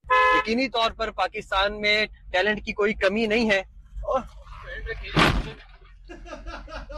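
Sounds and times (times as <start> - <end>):
car horn honking: 0.0 - 0.6
man talking excitedly: 0.3 - 5.6
car crashing into a police car: 5.0 - 5.8
laughter: 6.0 - 6.9.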